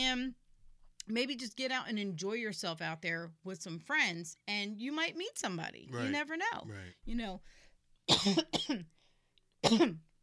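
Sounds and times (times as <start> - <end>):
speech: 0.0 - 0.4, 1.1 - 9.0, 9.6 - 10.1
harsh coughs: 8.1 - 8.9, 9.6 - 10.0.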